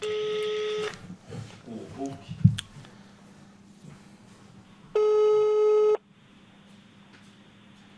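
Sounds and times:
phone ringing tone through a speakerphone: 0:00.0 - 0:00.9, 0:05.0 - 0:06.0.

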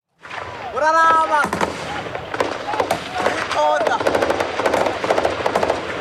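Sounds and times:
speech: 0:00.8 - 0:01.7, 0:03.6 - 0:04.2
machine-gun fire bursts in a gunfire exchange: 0:01.4 - 0:05.9.

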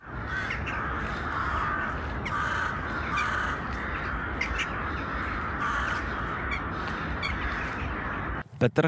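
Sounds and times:
large flock of rooks cawing: 0:00.0 - 0:08.4
speech: 0:08.6 - 0:08.8.

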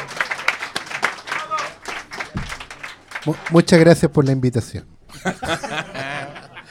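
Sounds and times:
small group applauding a pastor: 0:00.0 - 0:03.9
speech: 0:03.2 - 0:05.8
laughter: 0:05.1 - 0:06.6.

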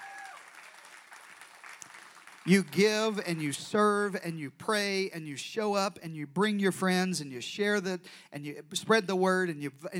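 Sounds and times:
large church audience applauding: 0:00.0 - 0:03.7
speech: 0:02.4 - 0:09.9.

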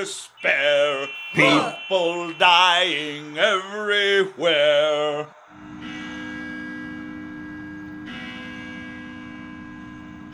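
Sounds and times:
speech: 0:00.0 - 0:05.4
heavy church bells ringing: 0:00.3 - 0:03.4, 0:05.8 - 0:10.3.

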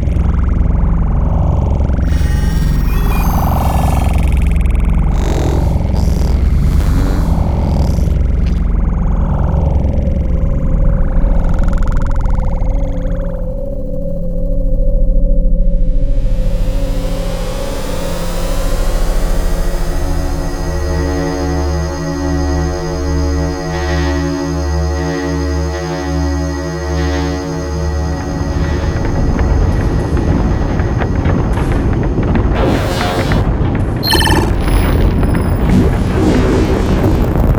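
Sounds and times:
deep continuous reactor rumble with rough churning texture: 0:00.0 - 0:24.4, 0:28.0 - 0:37.5
steadier drone with layered tones pulsing low: 0:02.0 - 0:08.6, 0:12.8 - 0:37.5.

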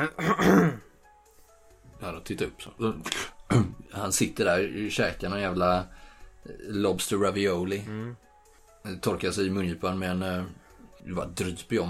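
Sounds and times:
speech: 0:00.0 - 0:00.8, 0:02.0 - 0:08.2, 0:08.8 - 0:11.8
person clearing throat: 0:00.0 - 0:00.9, 0:03.1 - 0:03.8.

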